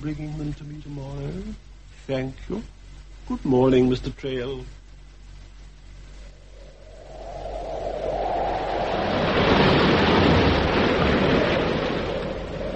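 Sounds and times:
speech: 0:00.0 - 0:04.8
tremendous wind blowing over the sea: 0:06.2 - 0:12.7
crashing sea: 0:06.6 - 0:12.7.

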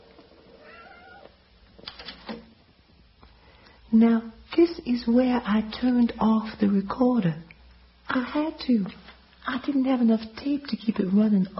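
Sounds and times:
calico cat meowing: 0:00.6 - 0:01.4
speech: 0:03.9 - 0:07.5, 0:08.1 - 0:11.5.

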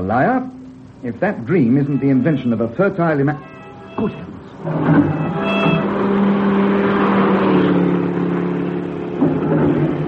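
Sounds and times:
speech: 0:00.0 - 0:05.6
car engine roaring as it rushes past: 0:00.0 - 0:10.0
long sustained car horn blaring: 0:01.6 - 0:08.8.

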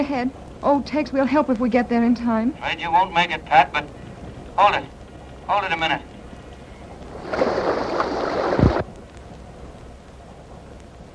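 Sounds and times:
speech: 0:00.0 - 0:04.0, 0:04.6 - 0:06.1
rushing water: 0:02.6 - 0:11.1.

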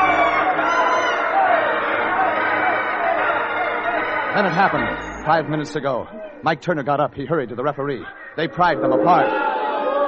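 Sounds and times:
large crowd screaming and cheering at a match: 0:00.0 - 0:06.4, 0:08.4 - 0:10.0
speech: 0:04.4 - 0:09.5.

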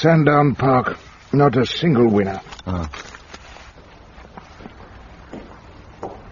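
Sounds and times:
speech: 0:00.0 - 0:03.2
low hum: 0:00.0 - 0:06.3
footsteps on the other side of a door: 0:03.0 - 0:06.3.

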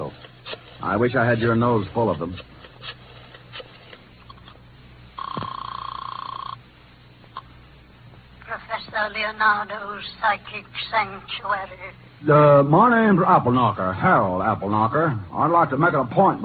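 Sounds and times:
speech: 0:00.8 - 0:03.0, 0:09.0 - 0:16.4
telephone line ring as a call is placed to a fortune teller: 0:05.2 - 0:06.6.

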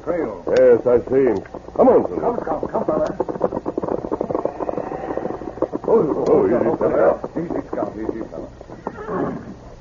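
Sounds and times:
speech: 0:00.0 - 0:03.5, 0:05.9 - 0:09.5
steady clip-clop of horse hooves: 0:00.5 - 0:09.7
horse whinnying loudly with rising neigh: 0:03.8 - 0:07.2, 0:08.8 - 0:09.6.

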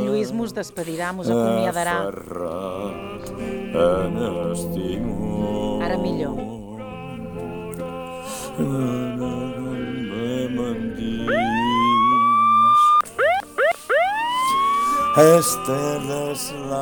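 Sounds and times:
steady musical background: 0:00.0 - 0:16.7
speech: 0:00.2 - 0:06.6, 0:08.6 - 0:09.3, 0:15.2 - 0:16.7
police car siren wailing and yelping: 0:11.3 - 0:16.4.

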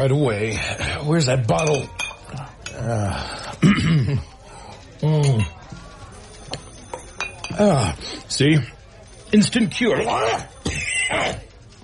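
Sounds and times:
speech: 0:00.0 - 0:02.0, 0:02.8 - 0:04.3, 0:07.6 - 0:11.4
person coughing: 0:03.6 - 0:04.2
person clearing throat: 0:03.6 - 0:04.3, 0:10.6 - 0:11.5.

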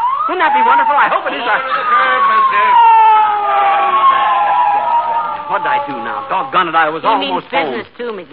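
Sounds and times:
police motorcycle siren winding down: 0:00.0 - 0:06.6
speech: 0:00.3 - 0:02.9, 0:05.5 - 0:08.3
faint murmur: 0:00.4 - 0:08.3.

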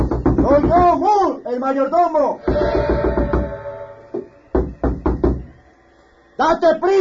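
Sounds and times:
heavy pounding on a wooden door: 0:00.0 - 0:01.0, 0:04.6 - 0:05.6
speech: 0:00.5 - 0:03.1, 0:06.4 - 0:06.9.

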